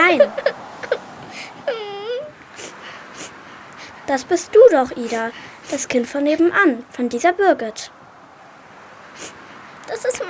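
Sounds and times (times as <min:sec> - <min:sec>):
child crying: 0:00.0 - 0:02.4, 0:09.9 - 0:10.2
child whimpering: 0:00.0 - 0:03.3, 0:04.9 - 0:05.9, 0:09.9 - 0:10.2
child sobbing and sniffling: 0:00.2 - 0:04.1, 0:04.8 - 0:06.0, 0:09.2 - 0:10.2
speech: 0:04.1 - 0:08.0, 0:09.2 - 0:10.2.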